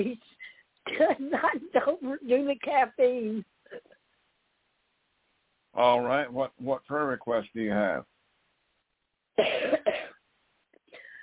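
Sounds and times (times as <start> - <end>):
speech: 0.0 - 0.3, 1.0 - 3.5, 5.8 - 8.2, 9.4 - 10.0
person coughing harshly: 0.9 - 1.6, 9.4 - 10.2
faint throat clearing: 9.4 - 10.2.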